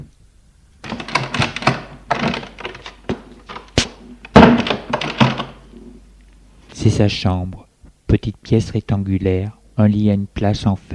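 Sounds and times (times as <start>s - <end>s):
door handle and latch clunking and rattling: 0.8s - 5.6s
speech: 6.8s - 10.9s.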